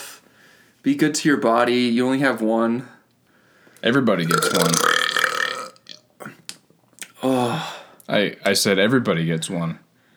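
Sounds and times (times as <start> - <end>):
speech: 0.8 - 3.0, 3.8 - 5.0, 7.2 - 9.8
person burping: 4.3 - 6.1.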